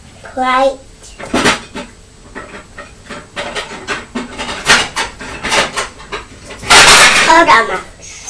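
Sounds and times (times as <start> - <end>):
people talking: 0.2 - 0.8, 7.1 - 8.2
kitchen cupboard opened to take out plates, wooden knocks and clatters: 1.2 - 7.5.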